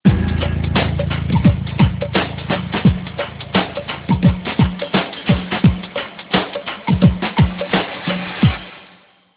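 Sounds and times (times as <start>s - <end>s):
pop shuffle drum ringtone: 0.0s - 8.7s.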